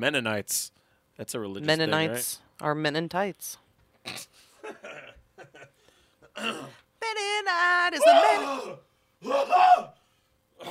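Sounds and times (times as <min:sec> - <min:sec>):
speech: 0:00.0 - 0:05.0, 0:06.4 - 0:10.0
gravelly throat clearing: 0:04.0 - 0:04.4, 0:06.3 - 0:06.8.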